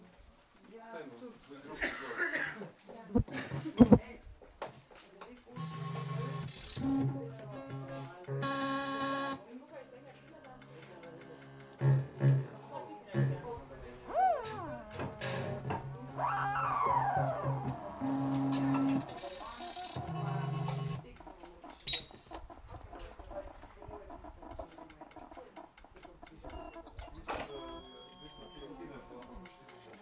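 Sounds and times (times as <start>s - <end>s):
voices talking at a camp: 0.0s - 30.0s
steady high insect whine: 11.9s - 20.2s
rising and falling calls, perhaps animals or birds: 14.0s - 20.0s.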